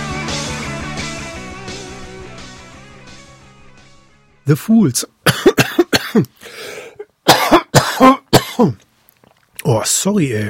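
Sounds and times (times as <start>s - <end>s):
speech: 4.5s - 5.2s, 6.1s - 6.7s, 8.0s - 8.8s, 9.6s - 10.4s
person coughing: 5.2s - 8.8s
wheezy breath: 6.4s - 7.0s.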